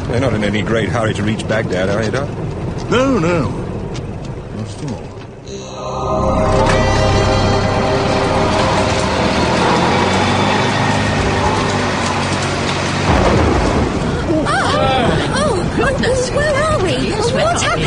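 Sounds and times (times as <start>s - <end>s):
speech: 0.1s - 3.6s
loud continuous storm roar: 5.4s - 17.8s
deep rolling thunder rumble during a storm: 5.9s - 17.7s
sharp thunder crash during a storm: 6.1s - 15.8s.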